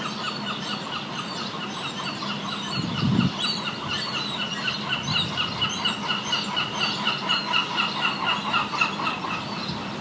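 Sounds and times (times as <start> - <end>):
gull calls: 0.0 - 9.9.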